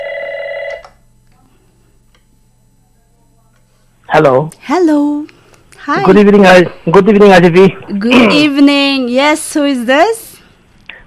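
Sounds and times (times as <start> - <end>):
telephone ringing with an incoming call: 0.0 - 0.9
speech: 4.1 - 10.2.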